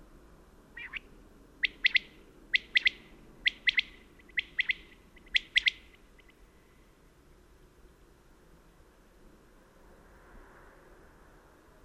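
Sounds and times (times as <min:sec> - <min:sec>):
common quail song at a mountain pass at daybreak: 0:00.7 - 0:06.4.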